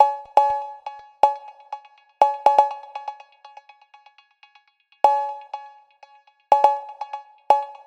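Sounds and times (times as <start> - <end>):
cowbell at 122 BPM: 0.0 - 3.6, 5.1 - 5.9, 6.5 - 7.8.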